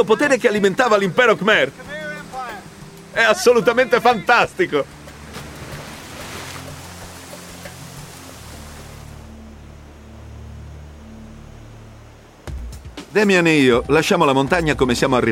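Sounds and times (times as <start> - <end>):
speech: 0.0 - 1.8, 3.1 - 5.0, 13.2 - 15.3
waterfall pouring with a loud steady roar: 0.0 - 12.5
louder splash of water: 1.9 - 9.4.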